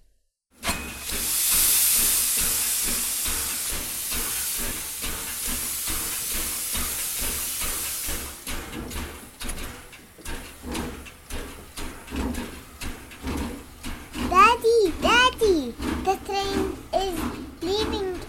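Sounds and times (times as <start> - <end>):
steam train hissing steam: 0.6 - 18.2.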